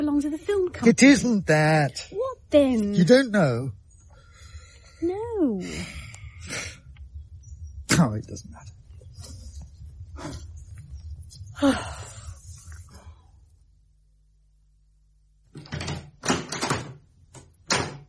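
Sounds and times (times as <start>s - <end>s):
speech: 0.1s - 3.8s, 5.0s - 6.7s, 8.0s - 8.7s, 11.6s - 12.1s
door handle of a locked door rattling: 15.5s - 18.0s.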